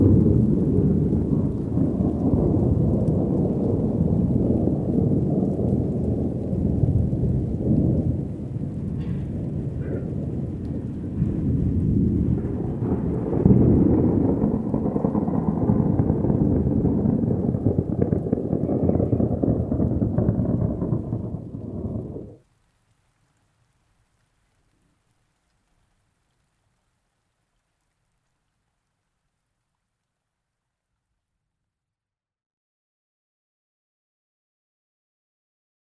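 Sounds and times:
distant thunder rumbling: 0.0s - 22.5s
falling rain: 0.0s - 31.3s.

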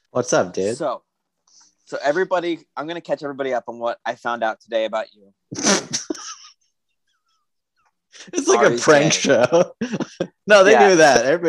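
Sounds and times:
speech: 0.1s - 1.1s, 1.9s - 5.9s, 8.2s - 11.4s
person sneezing: 5.5s - 6.1s.

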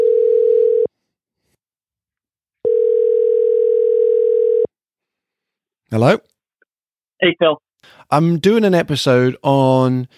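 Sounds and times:
buzzing electronic telephone ringing tone: 0.0s - 0.9s, 2.6s - 4.7s
speech: 5.9s - 6.3s, 7.2s - 10.1s.

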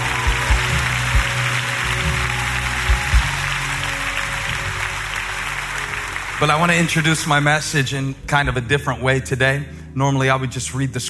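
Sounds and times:
crowd applauding: 0.0s - 8.1s
speech: 6.4s - 11.0s.

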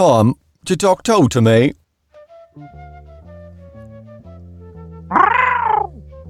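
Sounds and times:
speech: 0.0s - 1.8s
cat meowing: 5.1s - 6.0s.

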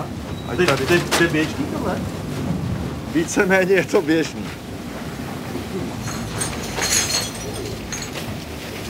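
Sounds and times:
speech: 0.5s - 2.2s, 3.1s - 4.6s
broken glass shards clattering and clinking along a rumbling conveyor: 6.0s - 8.4s.

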